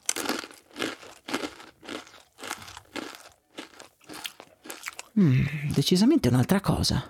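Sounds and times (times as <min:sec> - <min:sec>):
crisp sugared oven-baked corn flakes with milk being chewed: 0:00.0 - 0:05.2
speech: 0:05.2 - 0:07.0.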